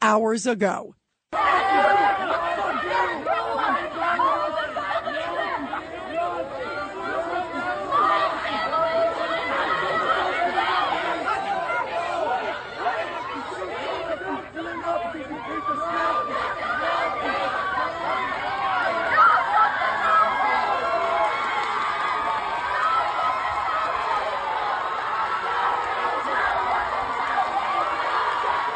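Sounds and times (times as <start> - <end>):
speech: 0.1 - 3.4
large outdoor crowd chatter at a protest rally: 1.4 - 28.7
raised shouting voices at a protest rally: 1.4 - 28.7.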